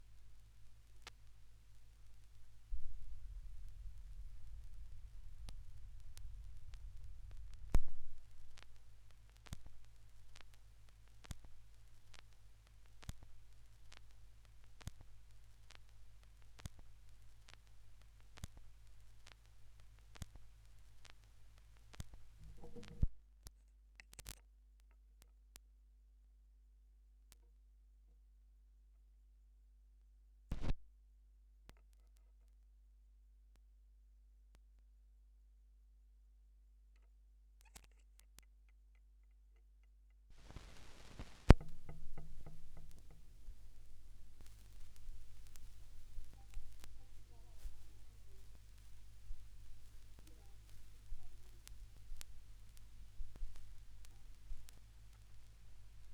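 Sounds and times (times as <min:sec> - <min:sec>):
vinyl record crackle: 0:00.0 - 0:24.4, 0:30.5 - 0:30.8, 0:37.0 - 0:38.6, 0:40.3 - 0:56.1.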